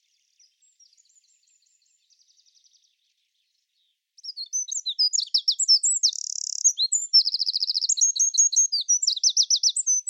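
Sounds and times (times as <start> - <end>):
bird giving rapid high chirps and slurred whistles: 4.2 - 10.0.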